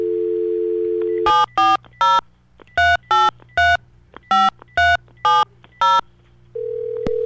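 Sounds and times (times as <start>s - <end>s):
telephone dial tone: 0.0s - 1.3s, 6.6s - 7.2s
telephone touch-tone dialing beeps: 0.8s - 2.2s, 2.8s - 6.0s.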